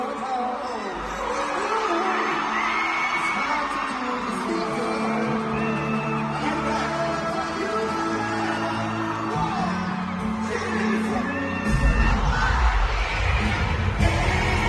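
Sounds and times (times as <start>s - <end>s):
large concert crowd of adult fans yelling and cheering: 0.0s - 14.6s
live pop performance: 0.0s - 14.6s
heavier low-end bass: 11.7s - 14.6s.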